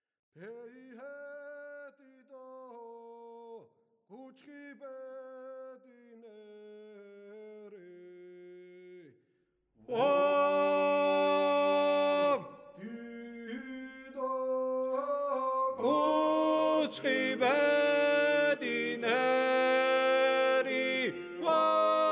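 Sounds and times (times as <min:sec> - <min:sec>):
person singing first voice part of a Megrelian song: 0:09.9 - 0:22.0.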